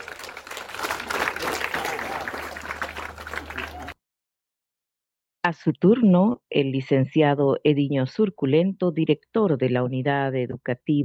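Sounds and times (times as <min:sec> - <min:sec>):
audience applause: 0:00.0 - 0:04.0
speech: 0:05.5 - 0:11.0.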